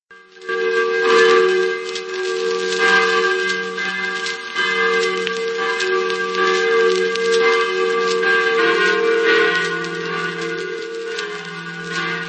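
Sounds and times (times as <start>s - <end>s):
large historic church bells pealing: 0.1s - 12.2s.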